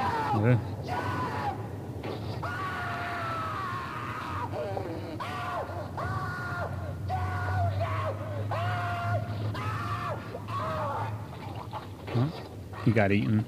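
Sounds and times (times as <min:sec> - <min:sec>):
man screaming in an audio drama: 0:00.0 - 0:01.7, 0:02.4 - 0:11.2
speech: 0:00.3 - 0:01.1, 0:12.9 - 0:13.4.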